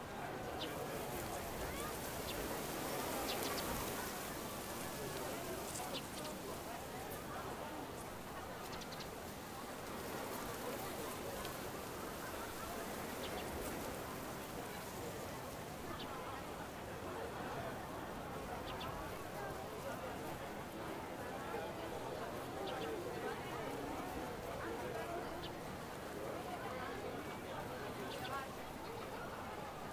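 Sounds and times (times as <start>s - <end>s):
busy chatter at an outdoor event plaza: 0.0s - 29.9s.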